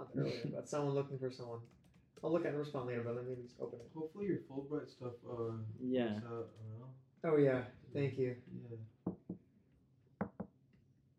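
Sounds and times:
speech: 0.1 - 9.0
knocking on wood: 9.1 - 9.4, 10.2 - 10.5.

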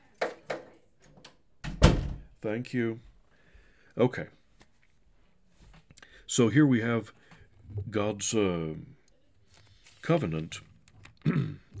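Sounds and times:
solid low thump of a door being pushed shut: 1.6 - 2.3
speech: 2.4 - 3.1, 4.0 - 4.4, 6.3 - 9.0, 10.0 - 10.7, 11.3 - 11.7.

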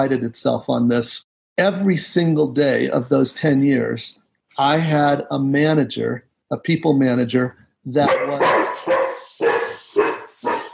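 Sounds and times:
speech: 0.0 - 9.0
dog barking loud short sharp barks: 8.0 - 10.7.

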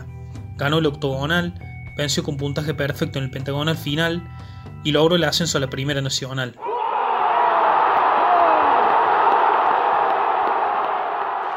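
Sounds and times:
speech: 0.6 - 6.7
large stadium football crowd chanting and roaring in celebration: 6.6 - 11.5
people shouting: 6.6 - 11.5.

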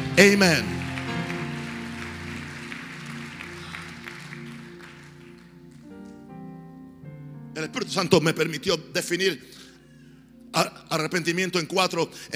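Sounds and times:
audience applauding: 0.0 - 6.3
sustained keyboard chords: 0.0 - 9.3
speech: 0.2 - 0.8, 7.9 - 9.6, 10.6 - 12.3.

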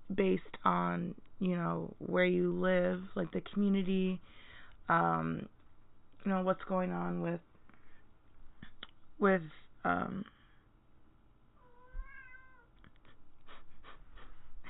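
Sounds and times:
speech: 0.1 - 5.6, 6.2 - 7.5, 9.2 - 10.4
pet cat meowing to be let out: 11.6 - 12.7.

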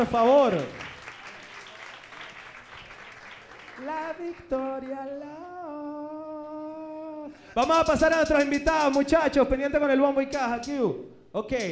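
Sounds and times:
speech: 0.0 - 0.8, 3.8 - 5.6, 7.3 - 11.7
audience applause: 0.0 - 4.4.

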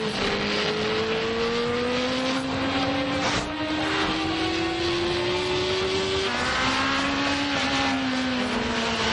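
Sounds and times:
two motorcycle engines roaring on a desert highway: 0.0 - 9.1
wind and road noise on a desert highway: 0.0 - 9.1.

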